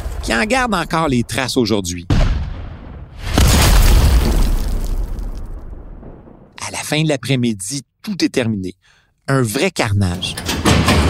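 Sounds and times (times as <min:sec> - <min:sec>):
speech: 0:00.3 - 0:02.1, 0:06.9 - 0:10.5
heavy cannon blast: 0:02.1 - 0:06.6.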